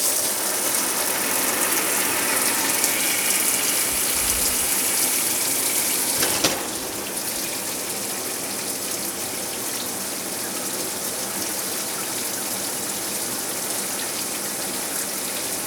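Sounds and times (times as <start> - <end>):
shower running: 0.0 - 15.6
brief clunk: 6.2 - 7.3.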